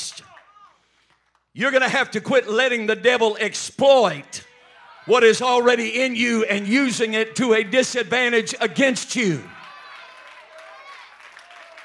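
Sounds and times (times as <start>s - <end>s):
audience clapping during a sermon: 0.0s - 1.5s, 7.4s - 8.6s, 9.4s - 11.8s
speech: 1.6s - 9.6s.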